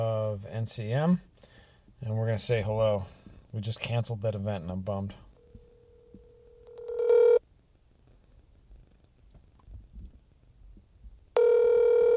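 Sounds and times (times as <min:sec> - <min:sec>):
speech: 0:00.0 - 0:01.3, 0:02.0 - 0:05.2
faint hum: 0:00.0 - 0:12.1
telephone ringback tone on outgoing call: 0:05.4 - 0:07.4, 0:11.4 - 0:12.1.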